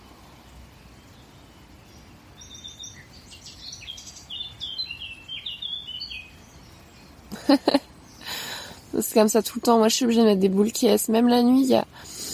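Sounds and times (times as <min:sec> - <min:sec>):
low steady rumble: 0:00.0 - 0:12.3
birds singing and chirping in a forest: 0:00.2 - 0:12.3
speech: 0:07.5 - 0:07.9, 0:09.2 - 0:12.1.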